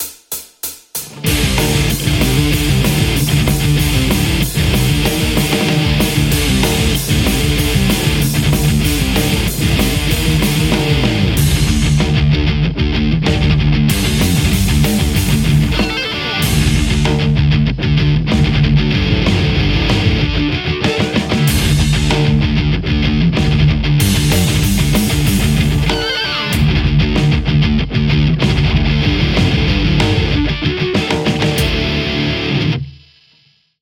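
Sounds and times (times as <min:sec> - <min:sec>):
electric guitar playing metal: 0:01.1 - 0:33.5.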